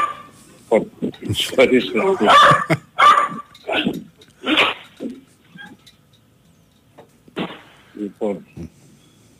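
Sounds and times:
dog barking and yelping: 0.0s - 0.3s, 2.2s - 4.9s
speech: 0.7s - 2.8s
dog whining: 2.2s - 5.9s.

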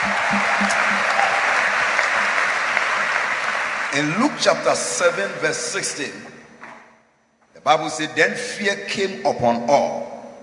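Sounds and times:
audience clapping hands: 0.0s - 5.2s
speech: 3.9s - 6.4s, 7.6s - 10.0s.

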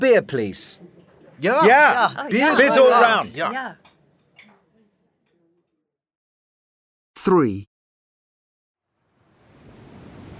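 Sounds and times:
speech: 0.0s - 3.9s, 7.2s - 7.7s
laughter: 0.8s - 3.8s
sea waves crashing: 9.3s - 10.3s
strong wind on a windy day by the sea: 9.3s - 10.3s.

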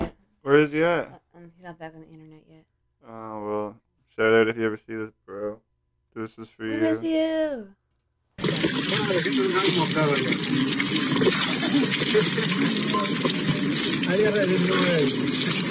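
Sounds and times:
speech: 0.4s - 7.8s, 8.6s - 15.6s
shower water running: 8.4s - 15.6s.

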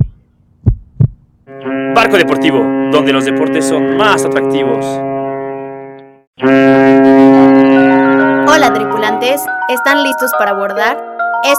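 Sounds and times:
heartbeat thumping: 0.0s - 1.3s
speech: 1.5s - 5.1s, 9.4s - 11.5s
sustained tonal hum: 1.5s - 9.8s.

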